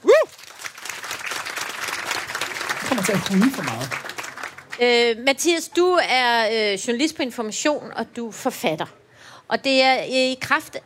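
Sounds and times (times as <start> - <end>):
audience applause greeting a guest on stage: 0.0 - 4.8
speech: 3.0 - 4.0, 4.8 - 10.8.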